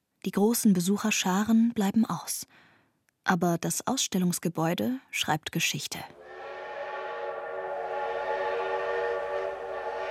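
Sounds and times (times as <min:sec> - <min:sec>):
speech: 0:00.2 - 0:02.6, 0:03.2 - 0:06.2
steam train whistle: 0:06.2 - 0:10.0.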